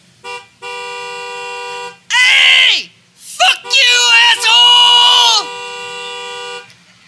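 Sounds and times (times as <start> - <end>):
car horn blaring: 0.2 - 2.1, 3.4 - 6.7
person shouting: 2.1 - 5.5.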